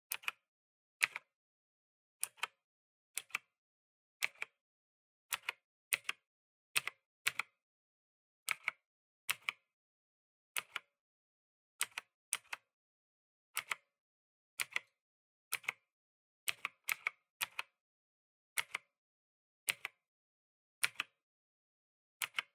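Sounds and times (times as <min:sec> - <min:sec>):
gentle PC keyboard typing: 0:00.1 - 0:00.4, 0:01.0 - 0:01.3, 0:02.2 - 0:02.6, 0:03.2 - 0:03.5, 0:04.2 - 0:04.6, 0:05.3 - 0:06.2, 0:06.8 - 0:07.6, 0:08.5 - 0:09.6, 0:10.6 - 0:10.9, 0:11.8 - 0:12.7, 0:13.6 - 0:13.9, 0:14.6 - 0:15.8, 0:16.5 - 0:17.8, 0:18.6 - 0:18.9, 0:19.7 - 0:20.0, 0:20.8 - 0:21.2, 0:22.2 - 0:22.5.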